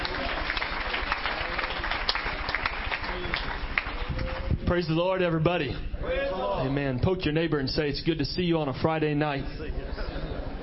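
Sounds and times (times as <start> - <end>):
congregation applauding: 0.0 - 5.3
speech: 4.7 - 9.6.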